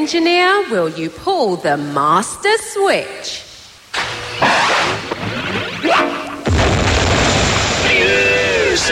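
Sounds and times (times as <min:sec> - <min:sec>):
speech: 0:00.0 - 0:03.5
explosion sound effect with rumbling bursts and roaring crackle: 0:04.4 - 0:08.9.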